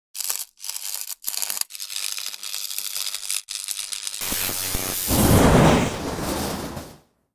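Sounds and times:
electric pulse: 0:04.2 - 0:06.9.

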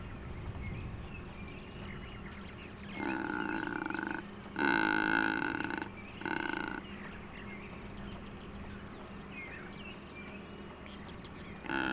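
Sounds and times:
low background hiss: 0:00.0 - 0:11.9
secretarybird giving deep groaning calls: 0:02.8 - 0:09.8, 0:11.5 - 0:11.9.

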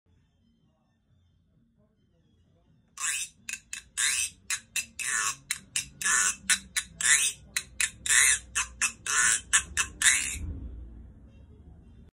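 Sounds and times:
guiro scraping: 0:03.0 - 0:10.5.

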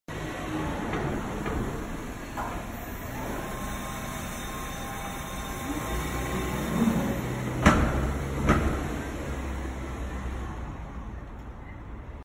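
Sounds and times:
parking lot ambience: 0:00.1 - 0:12.2.

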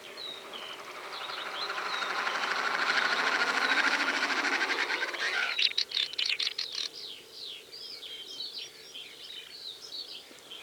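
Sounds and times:
Swinhoe's snipe rushing whirr: 0:00.0 - 0:05.7.

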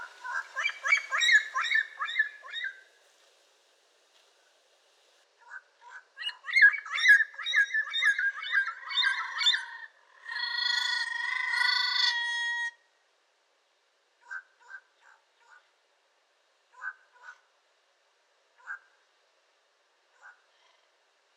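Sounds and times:
yellow-crowned amazon squawking: 0:00.0 - 0:02.8, 0:05.5 - 0:12.7.

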